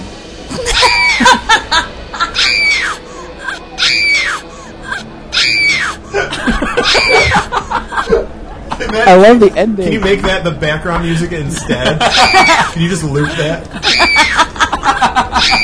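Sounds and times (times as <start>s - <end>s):
laughter: 0.5s - 3.7s, 6.1s - 9.2s, 11.3s - 15.6s
girl screaming sound effect: 0.6s - 1.4s, 2.2s - 6.0s, 6.8s - 7.5s, 13.8s - 14.4s, 15.4s - 15.6s
speech: 8.9s - 15.6s.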